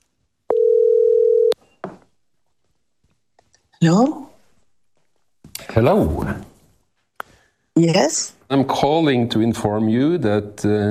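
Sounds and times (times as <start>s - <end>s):
telephone electronic tone: 0.5s - 1.6s
speech: 3.8s - 4.2s, 5.8s - 6.5s, 7.8s - 10.8s.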